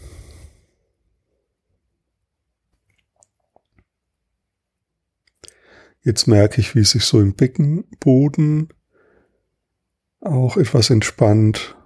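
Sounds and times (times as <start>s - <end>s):
breathy yawn: 0.0s - 0.7s
short breathy burst: 0.0s - 0.8s
soft mouth clicks and lip smacks: 2.7s - 4.0s, 5.2s - 5.6s
speech: 6.0s - 8.8s, 10.2s - 11.8s.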